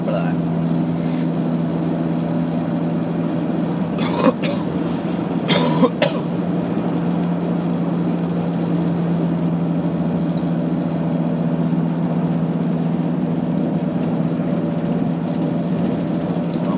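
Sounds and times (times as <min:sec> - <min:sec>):
steady low engine hum inside a moving vehicle: 0:00.0 - 0:16.7
person coughing out a cold: 0:04.0 - 0:04.8, 0:05.5 - 0:06.3.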